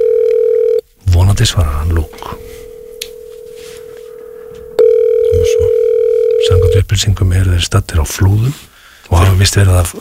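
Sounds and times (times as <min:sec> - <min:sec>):
ringing tone of an outgoing telephone call: 0:00.0 - 0:00.8, 0:01.7 - 0:06.8
speech: 0:01.4 - 0:02.4, 0:06.8 - 0:09.9.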